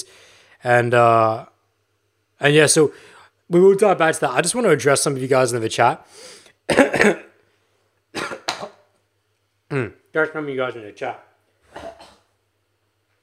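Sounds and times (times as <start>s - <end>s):
speech: 0.6s - 1.5s, 2.4s - 7.3s, 9.7s - 11.9s
gravelly throat clearing to bring up phlegm: 6.7s - 7.4s, 9.7s - 10.0s, 11.7s - 12.3s
harsh coughing: 6.7s - 7.4s, 8.1s - 8.9s, 11.7s - 12.3s.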